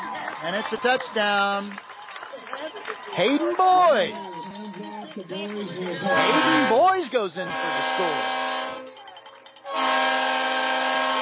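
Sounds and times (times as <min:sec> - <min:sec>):
speech: 0:00.4 - 0:01.9, 0:02.5 - 0:08.4
crowd murmur: 0:01.7 - 0:11.2
loud sustained train horn blaring after a touchdown: 0:06.1 - 0:09.0, 0:09.7 - 0:11.2.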